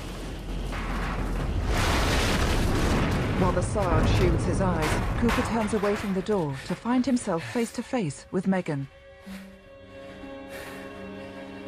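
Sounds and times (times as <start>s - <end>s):
explosion destroying a barn with heavy rumble: 0.0s - 6.3s
speech: 3.4s - 9.5s.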